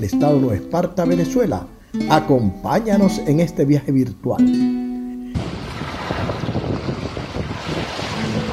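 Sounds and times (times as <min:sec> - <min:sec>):
speech: 0:00.1 - 0:04.8
steady wind roaring and buffeting the microphone at Playa El Yaque, Venezuela: 0:05.3 - 0:08.5
wash of surf at Playa El Yaque, Venezuela: 0:05.3 - 0:08.5.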